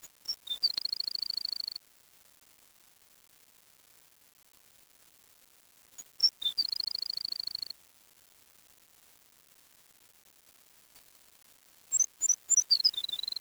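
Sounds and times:
bird song of high sharp whistled notes and a fast even trill: 0.3 - 1.7, 6.2 - 7.7, 11.9 - 13.3.

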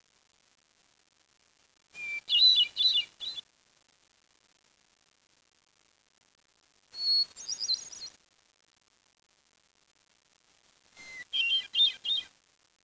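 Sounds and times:
bird song: 2.0 - 3.4, 7.0 - 8.1, 11.0 - 12.3.

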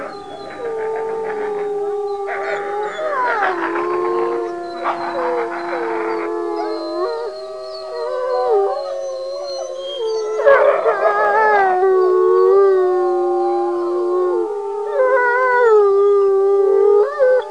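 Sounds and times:
wolves howling together in a chorus: 0.0 - 17.4.

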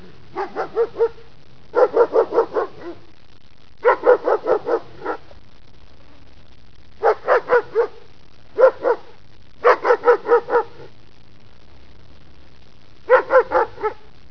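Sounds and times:
barking: 0.3 - 3.1, 3.8 - 5.4, 7.0 - 10.9, 13.1 - 14.1.

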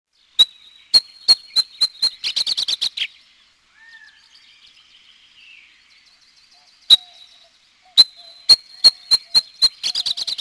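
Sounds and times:
faint background twitter: 0.1 - 10.3
Abert's Towhee calling sharp high notes into squealy chatter: 0.4 - 2.8, 8.0 - 10.3.

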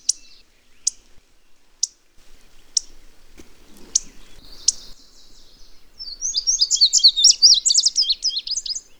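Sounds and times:
indigo bunting sharp high chip notes: 3.6 - 8.9.

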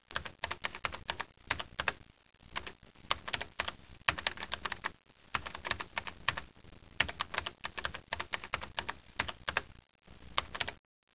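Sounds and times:
typing: 0.1 - 2.0, 2.6 - 6.4, 7.0 - 9.7, 10.4 - 10.8.

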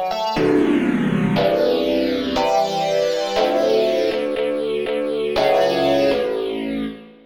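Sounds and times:
flanged synth: 0.2 - 7.0.

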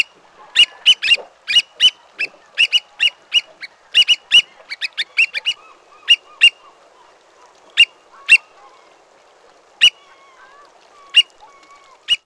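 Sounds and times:
Black oystercatcher giving sharp high calls: 0.6 - 6.8, 9.8 - 12.2.

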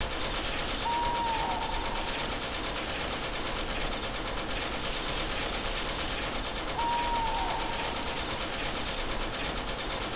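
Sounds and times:
ambience: 0.0 - 10.1.

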